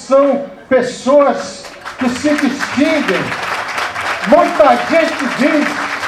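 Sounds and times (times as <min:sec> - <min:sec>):
speech: 0:00.1 - 0:03.5, 0:04.2 - 0:05.8
audience applause for community leaders: 0:01.6 - 0:06.0.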